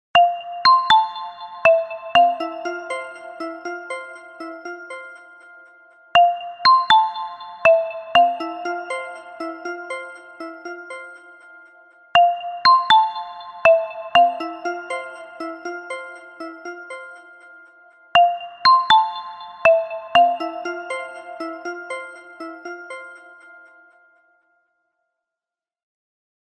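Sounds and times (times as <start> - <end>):
phone ringtone with elegant treble: 0.9 - 5.6, 6.2 - 11.5, 12.2 - 17.6, 18.2 - 23.7.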